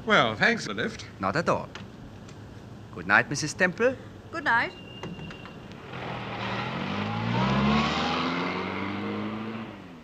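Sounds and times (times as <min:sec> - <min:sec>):
speech: 0:00.0 - 0:01.8, 0:03.0 - 0:05.2
car engine pulling away at night after dropping off passengers: 0:05.7 - 0:10.0.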